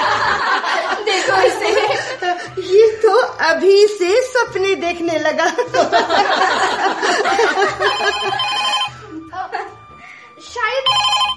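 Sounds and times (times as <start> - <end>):
laughter: 0.0 - 2.6, 5.4 - 8.5, 9.1 - 9.8
speech: 3.5 - 8.6
telephone with bright repeating electronic ringtone: 7.7 - 9.2, 10.9 - 11.3.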